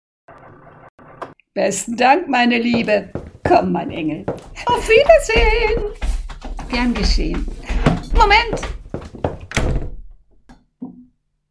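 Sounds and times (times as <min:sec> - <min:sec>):
speech: 0:01.6 - 0:06.1, 0:06.7 - 0:08.8
door swinging shut with a heavy thunk: 0:09.3 - 0:10.2.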